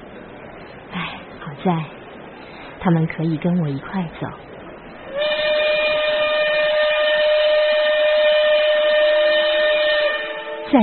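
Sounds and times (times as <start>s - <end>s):
faint low rumble of the train: 0.0s - 10.8s
speech: 1.0s - 2.0s, 2.8s - 4.4s
steam train whistle blast as a train departs Nanjing: 5.1s - 10.8s.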